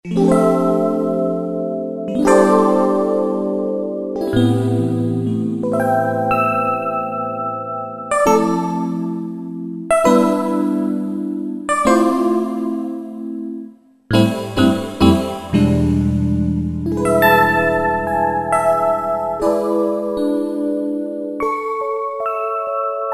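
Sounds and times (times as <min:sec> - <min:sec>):
Yamaha TG77 factory preset electric piano synth tone: 0:00.1 - 0:23.1.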